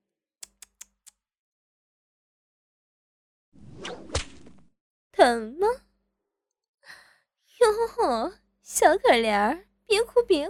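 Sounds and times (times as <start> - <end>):
whip cracking and lashing: 3.8 - 4.6
speech: 5.2 - 5.8, 8.0 - 10.4.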